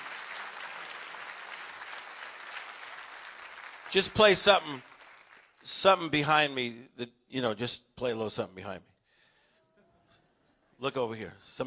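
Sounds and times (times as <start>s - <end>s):
audience applause: 0.0s - 5.6s
speech: 3.9s - 4.9s, 5.6s - 8.9s, 10.8s - 11.6s.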